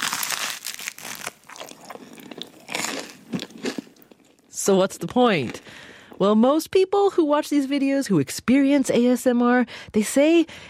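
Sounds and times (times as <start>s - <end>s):
crunching and chewing of crunchy garlic bread and noodles: 0.0s - 4.5s
wet mouth sounds while eating: 1.1s - 4.5s
speech: 4.7s - 10.6s.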